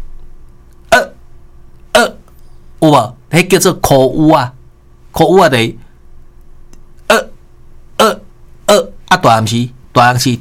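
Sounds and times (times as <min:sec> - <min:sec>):
voice imitating a child's hiccup: 0:00.9 - 0:01.2, 0:02.0 - 0:02.2, 0:07.0 - 0:07.4
speech: 0:02.8 - 0:04.6, 0:05.2 - 0:05.8, 0:08.7 - 0:10.3.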